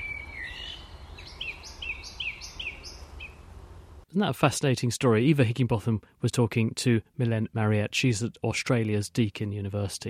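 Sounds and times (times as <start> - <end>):
songbirds singing in Cambridge to attract a mate: 0.0 - 4.0
low hiss: 0.0 - 10.0
speech: 4.1 - 10.0.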